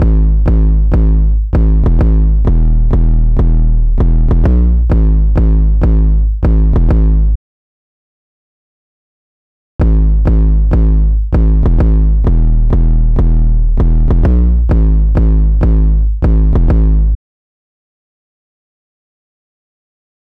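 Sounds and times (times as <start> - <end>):
808 drum machine sound: 0.0 - 7.2, 9.8 - 17.1.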